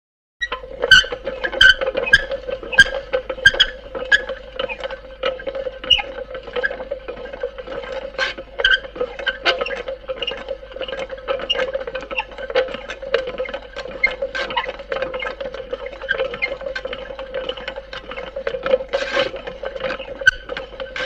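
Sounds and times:
hand-operated grinding wheel grinding: 0:00.4 - 0:21.0.

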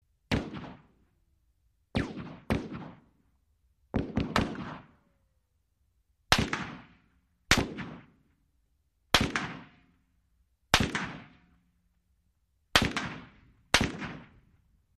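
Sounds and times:
AK47 single shots: 0:00.3 - 0:01.0, 0:02.0 - 0:03.2, 0:03.9 - 0:05.0, 0:06.3 - 0:08.2, 0:09.1 - 0:09.9, 0:10.7 - 0:11.5, 0:12.7 - 0:14.5.

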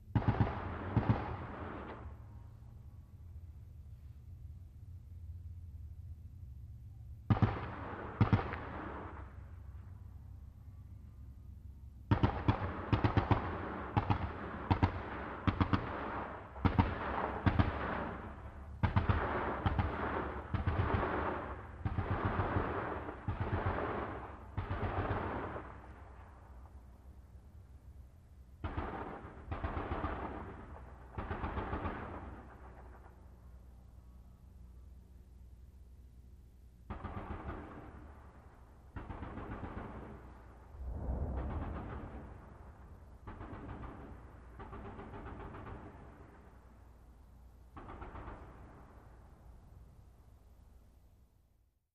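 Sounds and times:
distant .50 caliber gun firing: 0:00.1 - 0:02.1, 0:07.3 - 0:09.4, 0:12.1 - 0:25.8, 0:28.6 - 0:33.1, 0:36.9 - 0:38.2, 0:38.9 - 0:40.4, 0:41.3 - 0:42.6, 0:43.2 - 0:46.2, 0:47.8 - 0:48.7.

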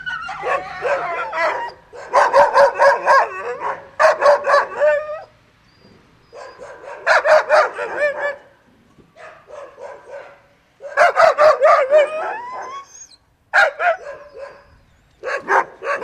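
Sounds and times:
dog barking: 0:00.2 - 0:05.2, 0:06.3 - 0:08.5, 0:09.2 - 0:12.7, 0:13.6 - 0:16.0.

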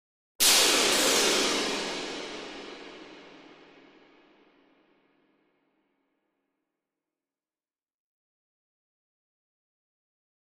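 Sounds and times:
short cymbal cacophony: 0:00.4 - 0:04.5.

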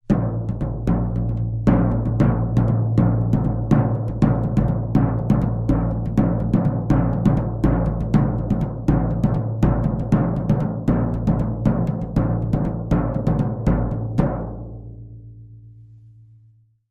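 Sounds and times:
tom drums rhythm: 0:00.0 - 0:14.9.

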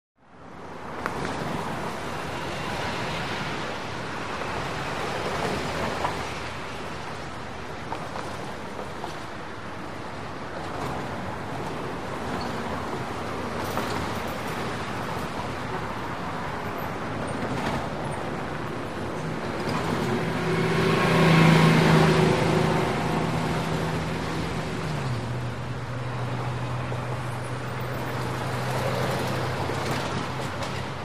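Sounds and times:
medium busy traffic in a big city: 0:00.2 - 0:31.0.

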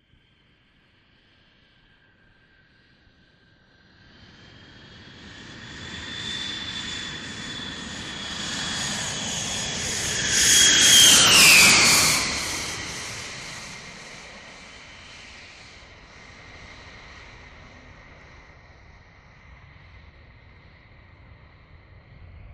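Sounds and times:
large jet passing low to land: 0:04.1 - 0:18.8.

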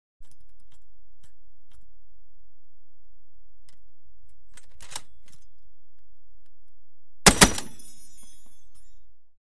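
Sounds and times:
tank machine gun loading: 0:07.3 - 0:07.8.

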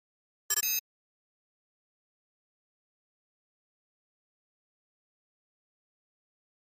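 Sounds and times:
flash beep: 0:00.5 - 0:00.8.

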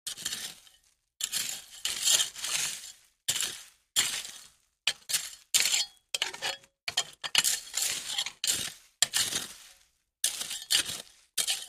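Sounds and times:
hoe in dirt while gardening: 0:00.1 - 0:11.6.

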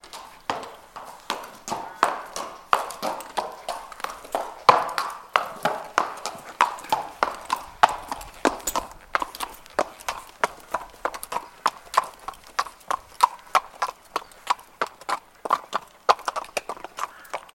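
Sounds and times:
horse footsteps on hard surface: 0:00.0 - 0:17.5.

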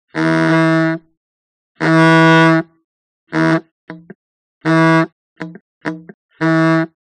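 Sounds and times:
veteran car horn: 0:00.1 - 0:01.1, 0:01.8 - 0:02.7, 0:03.3 - 0:03.7, 0:04.6 - 0:06.9.

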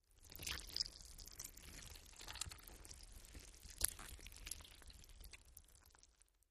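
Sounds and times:
gory gut squish: 0:00.2 - 0:06.2.

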